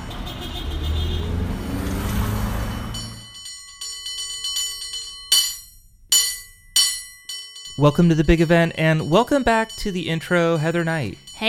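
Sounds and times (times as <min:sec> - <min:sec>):
heavy vehicle rumbling: 0:00.0 - 0:03.3
cable car bells clanging: 0:02.7 - 0:11.4
speech: 0:07.8 - 0:11.4.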